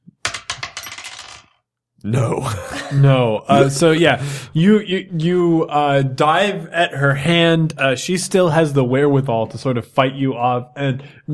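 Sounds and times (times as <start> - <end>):
dice tumbling across a tabletop: 0.2 - 1.6
speech: 2.0 - 11.3.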